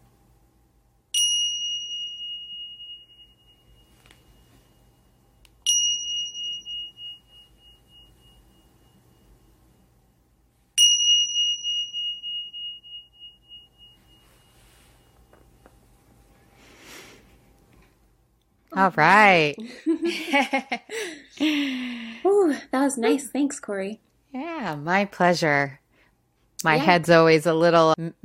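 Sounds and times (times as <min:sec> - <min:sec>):
meditation bells ringing: 0:01.2 - 0:09.9, 0:10.8 - 0:15.8
speech: 0:18.8 - 0:25.8, 0:26.6 - 0:28.2.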